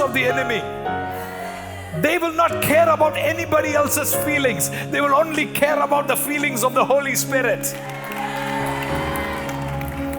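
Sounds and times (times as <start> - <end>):
speech: 0.1 - 1.0, 1.9 - 8.1
audience shouting and clapping: 7.7 - 10.1.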